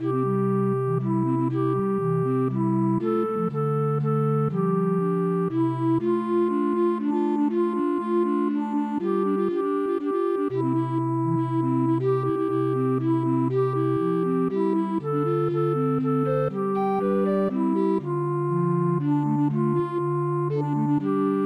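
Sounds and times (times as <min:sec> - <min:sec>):
MIDI recorder quartet playing traditional music: 0:00.0 - 0:21.4.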